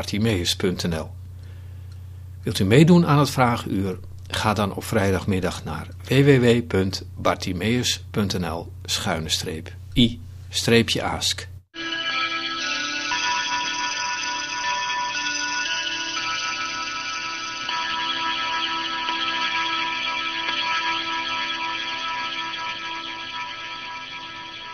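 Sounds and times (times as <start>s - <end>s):
speech: 0.0s - 1.2s, 2.4s - 11.5s
clock ringing the hour: 11.8s - 24.7s.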